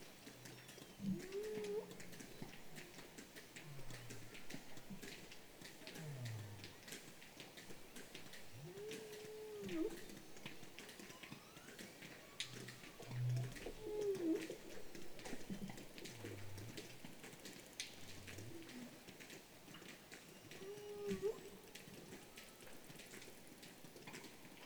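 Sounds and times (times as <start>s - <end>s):
low muffled pulses: 0.0s - 24.6s
steady underwater noise: 0.0s - 24.6s
whale tonal calls: 0.1s - 23.5s.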